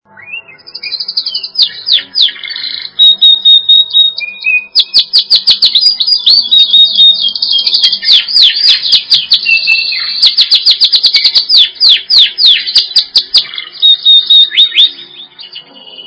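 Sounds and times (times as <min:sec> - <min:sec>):
bird song from Indonesia with chirps, whistles and trills: 0:00.1 - 0:16.0.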